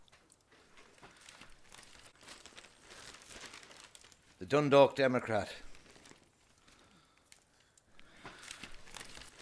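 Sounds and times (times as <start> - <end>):
newspaper pages rustling and crinkling as handled: 0.5 - 4.5, 5.6 - 7.4, 8.1 - 9.4
speech: 4.5 - 5.6.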